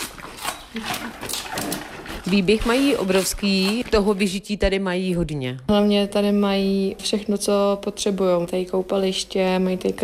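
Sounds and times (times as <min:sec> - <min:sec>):
two bears crunching celery stalks: 0:00.0 - 0:04.4
soft outdoor background: 0:00.0 - 0:10.0
speech: 0:00.7 - 0:10.0.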